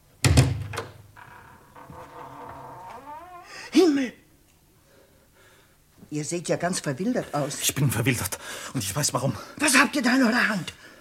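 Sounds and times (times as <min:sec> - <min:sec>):
house door latch clunk and rattle: 0:00.2 - 0:01.8
house door creaking as it swings: 0:00.2 - 0:03.7
speech: 0:03.7 - 0:04.2, 0:06.1 - 0:10.9.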